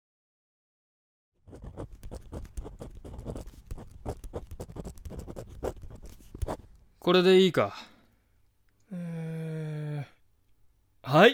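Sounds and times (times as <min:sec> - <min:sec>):
ballpoint pen scratching across paper: 0:01.4 - 0:06.8
speech: 0:07.1 - 0:07.9, 0:11.1 - 0:11.3.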